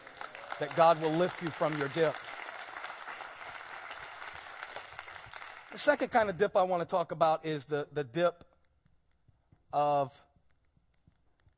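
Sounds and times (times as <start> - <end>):
audience clapping hands: 0.0 - 6.5
speech: 0.6 - 2.3, 5.8 - 8.5, 9.7 - 10.3.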